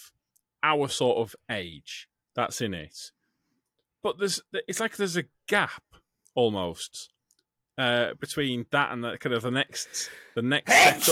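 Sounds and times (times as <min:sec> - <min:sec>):
speech: 0:00.6 - 0:03.2, 0:04.0 - 0:07.2, 0:07.8 - 0:11.1
loud sneeze: 0:10.7 - 0:11.1.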